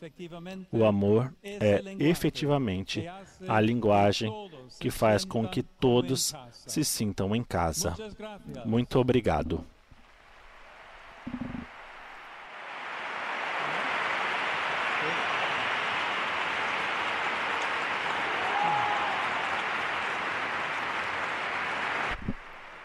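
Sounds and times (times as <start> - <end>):
speech: 0.0 - 9.8
large audience of the faithful applauding: 10.0 - 22.8.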